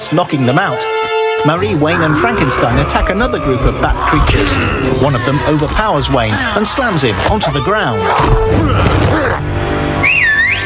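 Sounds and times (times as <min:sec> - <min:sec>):
speech: 0:00.1 - 0:09.7
person whistling to call a pack of dogs: 0:10.0 - 0:10.6.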